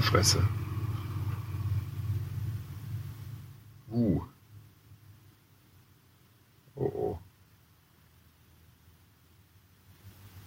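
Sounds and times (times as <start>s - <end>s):
speech: 0.0s - 0.6s, 3.9s - 4.3s
car engine rumble passing by in a parking lot: 0.0s - 5.3s.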